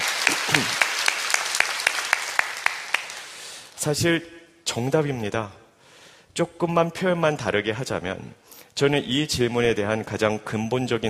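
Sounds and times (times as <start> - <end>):
scattered audience clapping: 0.0 - 3.4
audience clapping in rhythmic unison: 0.0 - 3.8
speech: 0.6 - 0.8, 3.8 - 5.6, 6.4 - 11.0.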